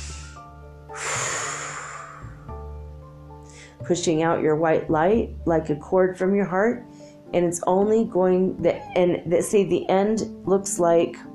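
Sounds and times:
deep breath: 0.0 - 2.5, 3.4 - 3.8
soft steady tonal background: 2.2 - 11.3
speech: 3.9 - 11.3.

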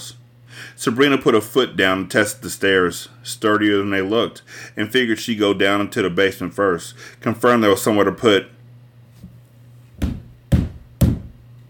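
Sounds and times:
faint steady hum: 0.0 - 11.6
speech: 0.8 - 8.6
knocking on a door: 10.0 - 11.4.

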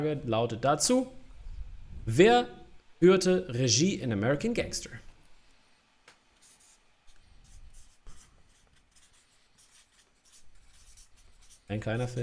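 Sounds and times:
speech: 0.0 - 1.2, 2.1 - 5.1, 11.7 - 12.2
pen writing an answer on paper: 6.4 - 12.2.

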